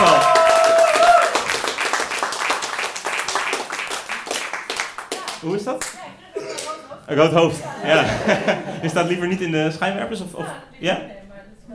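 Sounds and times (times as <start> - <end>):
festival audience applauding the organizer: 0.0 - 5.9
laughter: 6.6 - 9.5
speech: 7.1 - 11.7.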